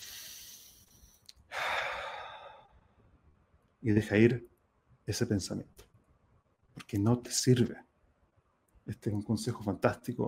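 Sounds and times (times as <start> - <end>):
deep breath exhale: 0.0 - 2.7
speech: 3.8 - 4.5, 5.1 - 5.9, 6.8 - 7.9, 8.9 - 10.2.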